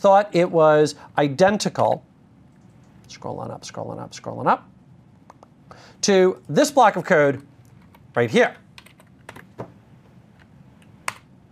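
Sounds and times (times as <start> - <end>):
speech: 0.0 - 2.1, 3.1 - 4.7, 5.8 - 7.5, 8.2 - 8.6
typing on a computer keyboard: 8.8 - 9.5.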